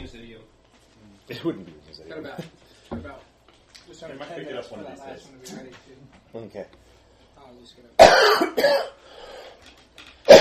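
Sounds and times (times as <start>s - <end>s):
speech: 0.1s - 9.8s
person coughing up phlegm: 8.0s - 9.0s.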